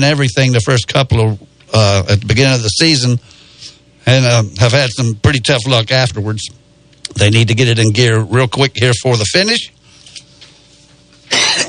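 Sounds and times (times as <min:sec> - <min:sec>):
speech: 0:00.0 - 0:03.4, 0:04.0 - 0:09.8
faint steady hum: 0:00.0 - 0:11.6
throat clearing: 0:11.3 - 0:11.6.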